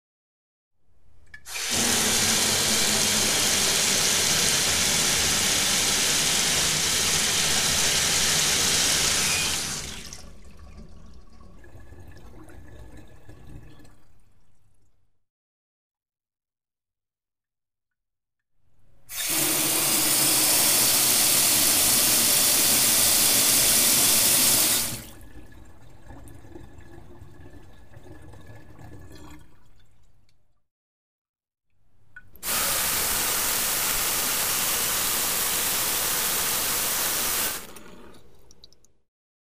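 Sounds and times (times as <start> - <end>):
water flowing into a metal sink: 1.3 - 14.6, 19.1 - 30.1, 32.4 - 38.8.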